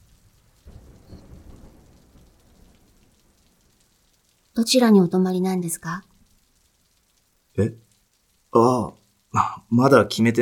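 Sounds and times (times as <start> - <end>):
deep rumble of thunder: 0.0 - 6.3
steady heavy rain: 0.0 - 10.3
speech: 4.6 - 6.1, 7.6 - 7.8, 8.5 - 10.3.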